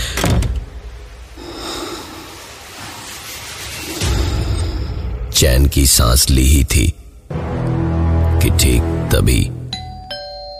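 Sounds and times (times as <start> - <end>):
door shutting with a heavy thud: 0.0 - 0.8
breathy noise: 1.2 - 5.3
speech: 5.4 - 7.0, 8.4 - 9.6.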